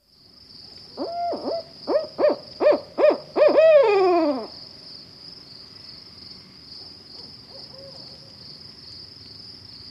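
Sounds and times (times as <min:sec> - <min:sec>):
barred owl hooting: 0:01.0 - 0:04.6, 0:07.5 - 0:08.1.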